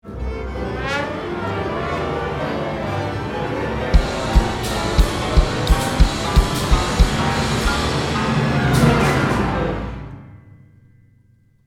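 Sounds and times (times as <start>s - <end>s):
contemporary music crescendo: 1.2s - 10.4s.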